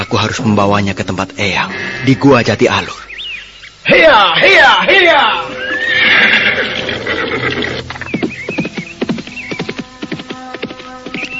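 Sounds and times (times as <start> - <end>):
speech: 0.1 - 3.1, 3.8 - 7.7
horse neighing and whinnying: 5.2 - 8.1
horse hooves galloping: 5.4 - 11.3.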